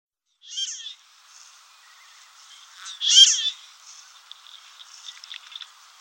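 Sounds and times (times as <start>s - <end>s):
marbled duck nasal squeaky calls: 0.4s - 1.0s, 2.9s - 3.6s.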